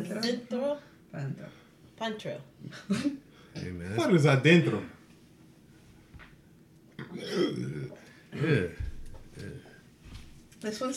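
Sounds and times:
speech: 0.1s - 5.0s, 7.1s - 8.8s, 10.6s - 10.9s
deep throaty burps: 7.0s - 8.8s.

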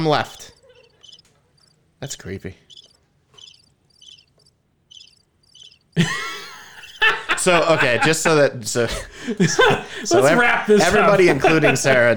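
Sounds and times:
speech: 0.0s - 0.5s, 2.0s - 2.7s, 6.0s - 6.2s, 7.4s - 12.1s
cricket chirping: 0.0s - 7.4s
laughter: 6.0s - 12.1s.

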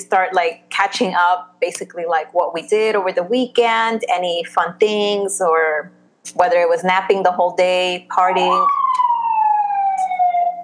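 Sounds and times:
speech: 0.0s - 9.0s
emergency vehicle siren wailing outside in the Bronx: 8.3s - 10.6s.

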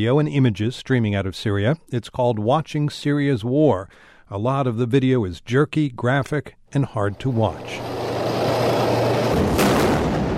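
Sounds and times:
speech: 0.0s - 8.0s
heavy booming explosions from an attack on a military convoy in Aleppo: 8.1s - 10.3s
gunfire from an attack on a military convoy in Aleppo: 9.2s - 10.3s.

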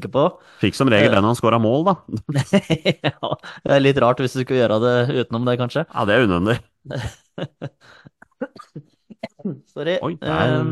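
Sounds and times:
speech: 0.0s - 10.6s
laughter: 2.3s - 3.7s, 6.9s - 8.2s
short broken throat clearing: 8.2s - 9.4s
stifled cough: 8.2s - 9.4s.

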